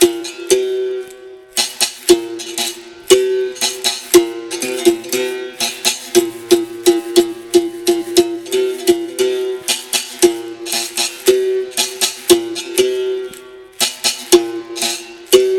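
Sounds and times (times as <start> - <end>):
capoeira Angola music: 0.0 - 15.5.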